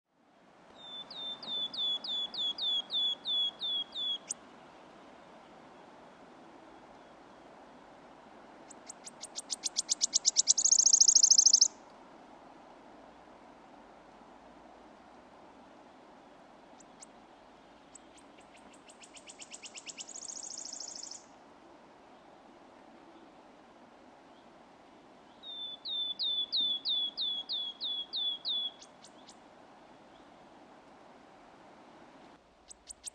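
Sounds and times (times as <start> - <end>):
Eurasian nuthatch calling: 0.8 - 4.4, 8.7 - 11.8, 17.8 - 21.3, 25.3 - 29.4, 32.7 - 33.1.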